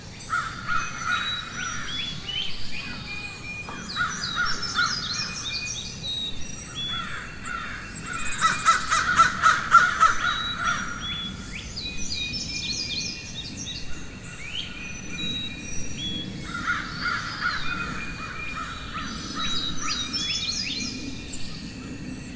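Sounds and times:
small birds chirping and whistling in a forest: 0:00.1 - 0:22.3
crows cawing in a forest: 0:00.3 - 0:02.2, 0:03.7 - 0:05.4, 0:06.9 - 0:11.1, 0:16.5 - 0:20.1.

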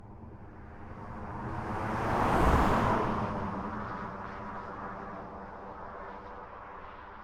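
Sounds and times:
single car passing by at moderate speed on a rural road: 0:01.2 - 0:04.9.

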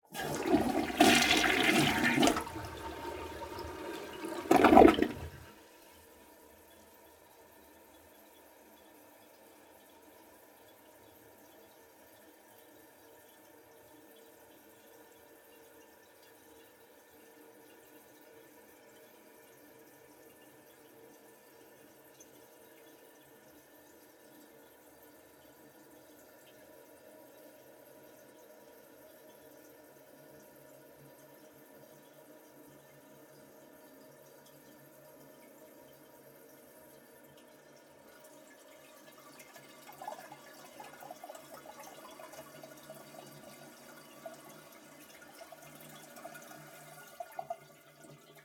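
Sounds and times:
domestic toilet flushing with seat up: 0:00.0 - 0:06.1, 0:37.1 - 0:48.4
domestic toilet cistern filling: 0:00.0 - 0:06.2, 0:32.2 - 0:48.4.

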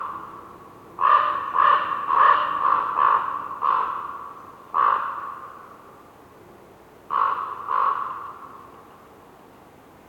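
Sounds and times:
raven croaking hoarsely in a winter forest: 0:01.0 - 0:05.7, 0:07.1 - 0:08.7.

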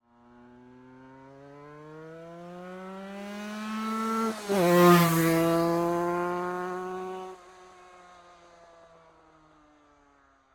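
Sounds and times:
1998 Aprilia RS 125 sport bike passing by fast accelerating: 0:00.1 - 0:08.1.

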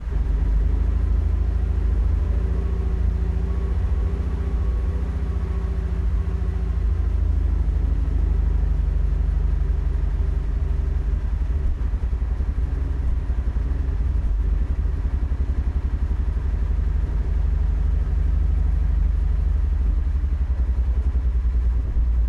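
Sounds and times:
Cromwell tank driving fast and stopping heard from inside: 0:00.0 - 0:22.2.

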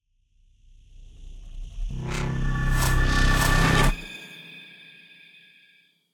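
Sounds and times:
digital riser for horror jumpscares: 0:01.9 - 0:04.2.

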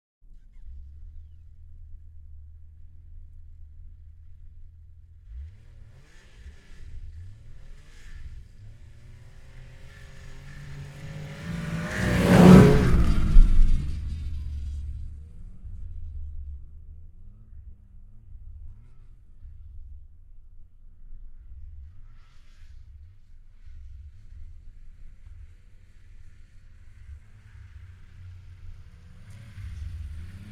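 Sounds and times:
2006 Yamaha RS Venture snowmobile passing fast, recorded in ORTF stereo: 0:05.3 - 0:15.7, 0:24.1 - 0:30.5.

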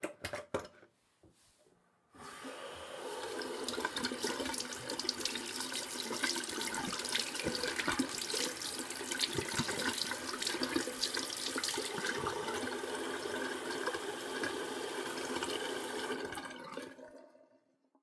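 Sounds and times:
sink tap running: 0:02.2 - 0:16.4
soap pump: 0:02.2 - 0:16.6
washing hands in a bathroom: 0:03.0 - 0:12.6.

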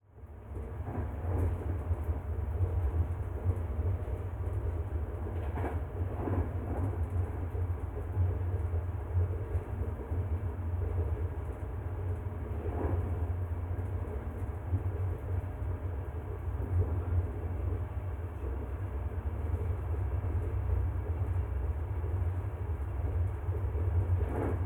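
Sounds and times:
indoor train trip in a passenger coach: 0:00.0 - 0:24.6.

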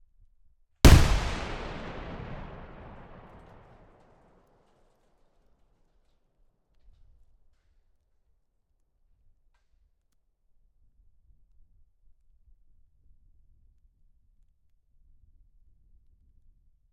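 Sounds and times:
distant tank mine explosion mounted on metal beam: 0:00.9 - 0:03.9.

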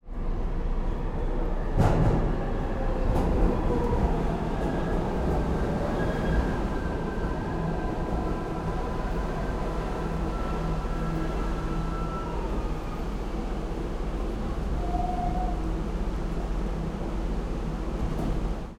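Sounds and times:
New York 6 Line subway train going up and stopping: 0:00.0 - 0:18.7
New York 6 Line subway chime: 0:04.6 - 0:16.7.

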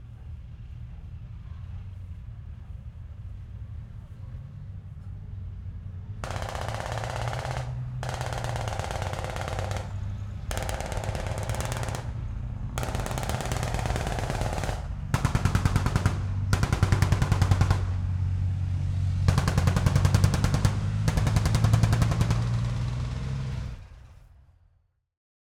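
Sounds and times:
7.62 and 50 cal machine guns in a tank battle: 0:06.2 - 0:18.3, 0:19.2 - 0:23.8.

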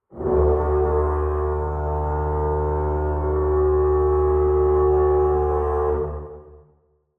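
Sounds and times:
cinematic horn: 0:00.0 - 0:06.8.

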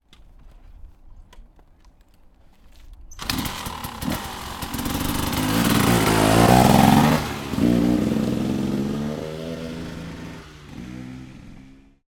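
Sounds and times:
250 enduro motorbike kickstarting and driving away: 0:03.1 - 0:12.0.

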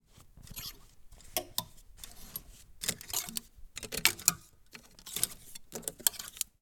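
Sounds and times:
metal hangers moving in a closet: 0:00.4 - 0:06.6.

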